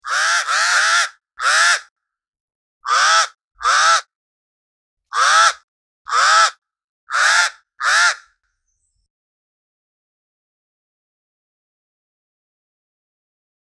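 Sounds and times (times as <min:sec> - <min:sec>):
pied crow calling in Mayotte: 0:00.0 - 0:01.9, 0:02.8 - 0:04.1, 0:05.1 - 0:08.3.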